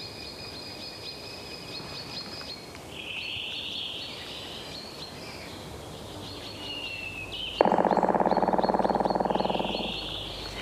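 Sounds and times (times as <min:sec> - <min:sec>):
other birds singing: 0:00.0 - 0:10.6
Black Woodpecker drumming: 0:07.6 - 0:10.6.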